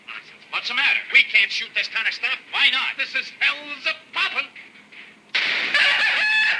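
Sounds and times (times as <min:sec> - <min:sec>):
speech: 0:00.6 - 0:04.5
rooster crowing: 0:05.7 - 0:06.5.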